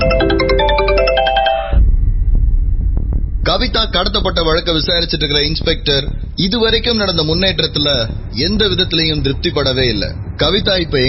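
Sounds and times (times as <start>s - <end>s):
phone ringing with a bright electronic melody: 0.0s - 1.8s
low rumbling noise: 0.0s - 11.0s
speech: 3.6s - 11.0s.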